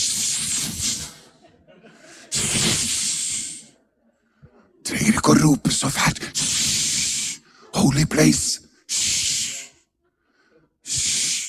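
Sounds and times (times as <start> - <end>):
person imitating a snake's hiss: 0.0 - 1.3, 2.3 - 3.7, 4.9 - 9.8, 10.8 - 11.4
laughter: 0.8 - 4.0
speech: 5.3 - 6.6, 7.8 - 8.6.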